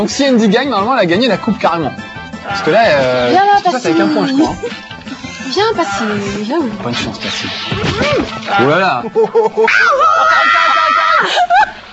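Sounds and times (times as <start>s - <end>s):
speech: 0.0s - 4.9s, 5.5s - 10.1s
laughter: 7.7s - 11.8s
person screaming with excitement at winning a game: 9.6s - 11.4s.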